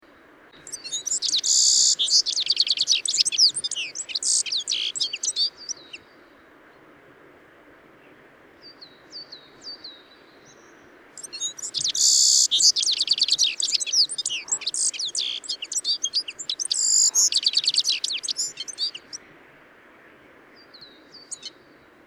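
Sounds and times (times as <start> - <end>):
citril finch singing: 0.6 - 6.0, 8.6 - 19.3, 20.6 - 21.6.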